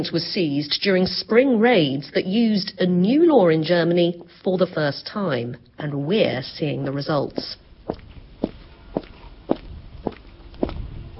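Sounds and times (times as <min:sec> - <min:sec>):
speech: 0:00.0 - 0:08.0
footsteps echoing on a hard floor in a large empty warehouse: 0:06.8 - 0:11.1.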